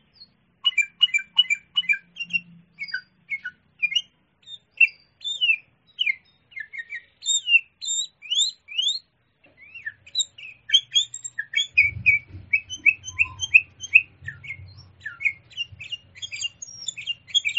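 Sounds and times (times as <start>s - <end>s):
Sooty-headed bulbul singing: 0.0s - 17.5s
low rumbling noise: 11.8s - 16.2s.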